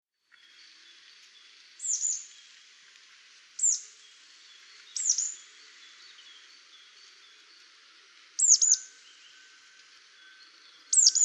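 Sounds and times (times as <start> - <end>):
faint background birdsong: 0.2 - 11.2
marsh tit Poecile palustris calling: 1.8 - 2.2, 3.6 - 3.8, 5.0 - 5.4, 8.4 - 8.8, 10.9 - 11.2.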